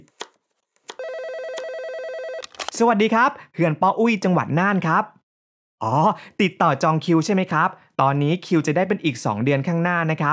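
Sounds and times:
knife chopping vegetables on a board: 0.0 - 1.7
loud electronic phone ringtone trilling: 0.9 - 2.6
speech: 2.8 - 5.2, 5.8 - 10.3.

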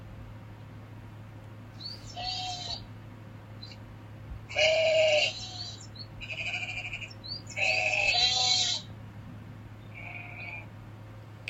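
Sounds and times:
low steady hum: 0.0 - 11.4
sheep tended by a shepherd boy bleating: 2.1 - 2.9, 4.5 - 8.9, 9.9 - 10.7.

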